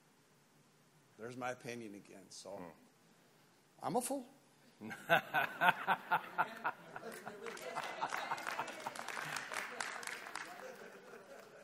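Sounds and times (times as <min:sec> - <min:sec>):
speech: 0:01.2 - 0:02.9, 0:03.8 - 0:08.3
audience laughing: 0:04.9 - 0:11.6
audience clapping: 0:06.6 - 0:11.6.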